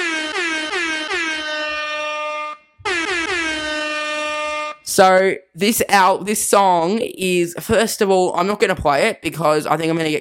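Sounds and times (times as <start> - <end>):
air horn sound effect blasts: 0.0 - 5.0
speech: 5.0 - 10.2.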